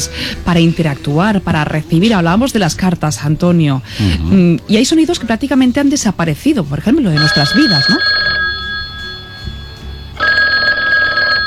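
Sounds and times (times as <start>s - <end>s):
speech: 0.0s - 8.4s
old landline telephone ringing with an electric bell: 7.2s - 11.4s.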